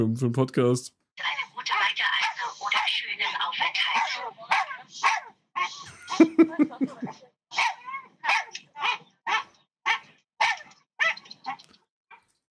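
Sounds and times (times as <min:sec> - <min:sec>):
speech: 0:00.0 - 0:01.8, 0:03.9 - 0:07.1
dog barking on an airplane: 0:02.2 - 0:03.0, 0:03.8 - 0:05.9, 0:07.5 - 0:12.2
laughter: 0:05.7 - 0:07.2.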